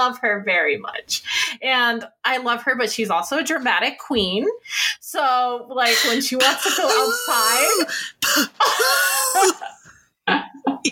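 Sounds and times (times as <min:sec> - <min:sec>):
speech: 0:00.0 - 0:10.8
person imitating an old pet's exaggerated fake cough: 0:05.9 - 0:09.7.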